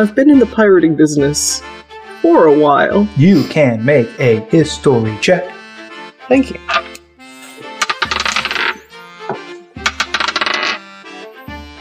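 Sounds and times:
speech: 0:00.0 - 0:05.6, 0:06.3 - 0:06.8
dice clattering and tumbling across a hard surface: 0:07.8 - 0:08.8, 0:09.8 - 0:10.8
isolated knocks: 0:09.3 - 0:10.8.

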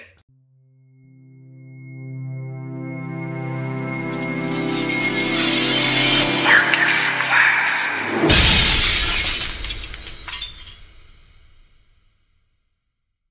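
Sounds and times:
droning tone: 0:00.3 - 0:08.5
tinkling glass debris: 0:04.0 - 0:07.5, 0:08.3 - 0:11.1
glass shattering: 0:04.2 - 0:07.2, 0:08.3 - 0:11.6.

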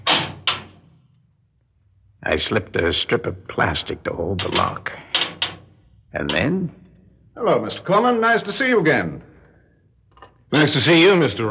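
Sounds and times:
low steady hum: 0:00.0 - 0:11.5
speech: 0:02.2 - 0:05.1, 0:06.1 - 0:06.8, 0:07.4 - 0:09.3, 0:10.5 - 0:11.5
fire door leading to offices opening a crack: 0:04.4 - 0:06.7.

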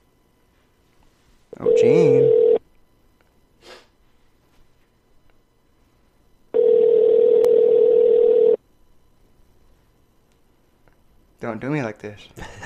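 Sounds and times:
telephone dial tone while placing a call: 0:01.6 - 0:02.6, 0:06.6 - 0:08.6
speech: 0:01.7 - 0:02.4, 0:11.6 - 0:12.6
soft sniff: 0:03.6 - 0:04.0.

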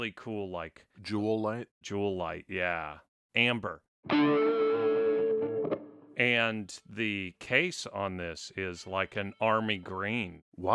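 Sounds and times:
speech: 0:00.0 - 0:04.9, 0:06.2 - 0:10.7
heavily distorted electric guitar chord with full reverb: 0:04.1 - 0:06.0.

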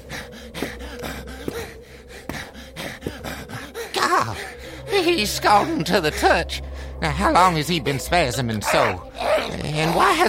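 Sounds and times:
man breathing harshly and raggedly with heavy gasps: 0:00.0 - 0:07.0
speech: 0:04.2 - 0:10.2.

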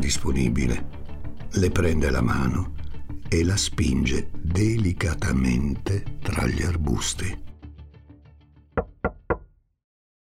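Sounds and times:
speech: 0:00.1 - 0:07.5
man knocking on a car window: 0:08.8 - 0:09.4.

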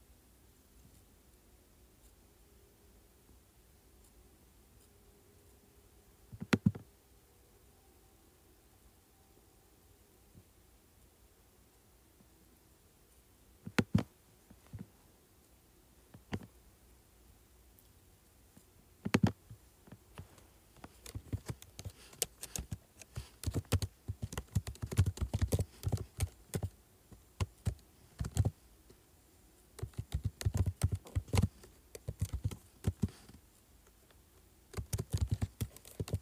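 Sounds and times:
faint low hum: 0:00.0 - 0:36.1
keyboard typing: 0:06.3 - 0:06.8, 0:13.7 - 0:14.1, 0:19.0 - 0:19.4, 0:20.2 - 0:26.7, 0:27.4 - 0:28.6, 0:29.8 - 0:33.4, 0:34.7 - 0:36.1
mouse clicking and scrolling: 0:06.3 - 0:06.8, 0:13.6 - 0:14.1, 0:16.1 - 0:16.5, 0:19.0 - 0:19.4, 0:20.2 - 0:26.7, 0:29.8 - 0:33.1.

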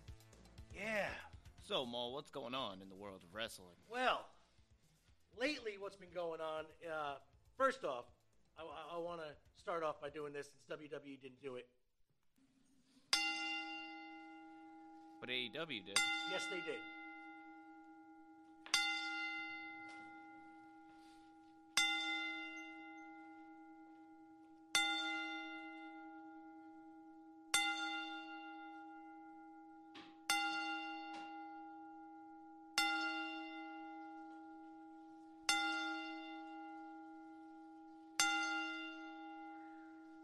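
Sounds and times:
speech: 0:00.8 - 0:04.4, 0:05.3 - 0:11.8, 0:15.2 - 0:17.0
single bell tolling in a ten-bell salute honoring a deceased wrestler: 0:13.1 - 0:40.2.

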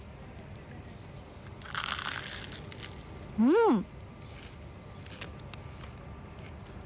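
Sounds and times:
crunching bite into a crispy fried minced-meat cutlet with garlic: 0:01.6 - 0:03.1, 0:04.2 - 0:06.0
speech: 0:03.4 - 0:04.0.

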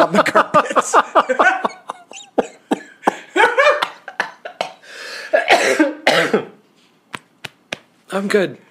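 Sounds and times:
speech: 0:00.0 - 0:02.6, 0:08.2 - 0:08.6
laughter: 0:00.0 - 0:04.8
person in a violent coughing fit: 0:02.2 - 0:03.3, 0:05.3 - 0:06.6
strained wheezy gasps: 0:04.8 - 0:05.4.

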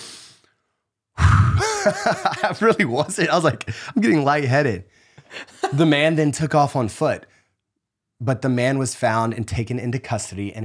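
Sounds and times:
person's loud intake of air catching breath after reading a news story aloud: 0:00.0 - 0:00.4
deep breathy exhale: 0:00.0 - 0:00.6
laughter: 0:01.3 - 0:04.2, 0:05.3 - 0:06.1
speech: 0:01.8 - 0:07.3, 0:08.2 - 0:10.6.

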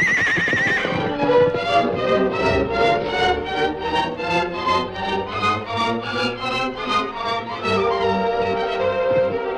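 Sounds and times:
agitated horse neighing and whinnying while bucking: 0:00.0 - 0:01.2
rhythmic thudding of horse bucking and stamping: 0:00.0 - 0:09.5.

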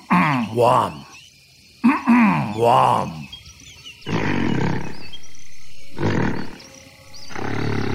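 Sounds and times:
speech: 0:00.4 - 0:01.0, 0:02.6 - 0:03.2
gorilla belching vocalization: 0:01.8 - 0:03.2, 0:04.1 - 0:05.0, 0:06.0 - 0:06.6, 0:07.3 - 0:07.9.

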